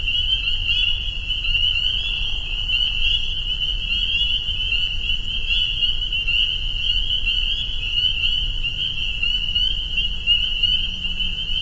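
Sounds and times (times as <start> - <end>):
spring peepers chorus at a pond in northern Vermont USA: 0.0 - 11.6.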